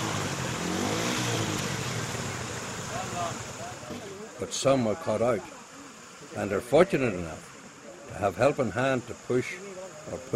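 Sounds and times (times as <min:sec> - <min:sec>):
car engine revving while driving through shallow water: 0:00.0 - 0:04.2
wash and splash of spray from a car in shallow water: 0:00.0 - 0:04.4
speech: 0:03.3 - 0:05.6, 0:06.3 - 0:07.5, 0:08.1 - 0:10.3.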